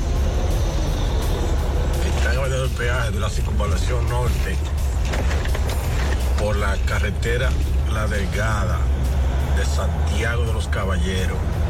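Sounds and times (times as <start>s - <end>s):
heavy mining truck engine rumbling on a highway: 0.0s - 11.6s
speech: 2.7s - 5.5s, 6.4s - 9.0s, 9.6s - 11.6s.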